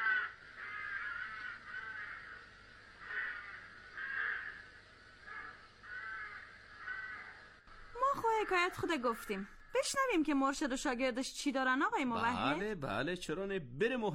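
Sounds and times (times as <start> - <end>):
crow cawing: 0.0 - 10.4
speech: 8.4 - 14.1.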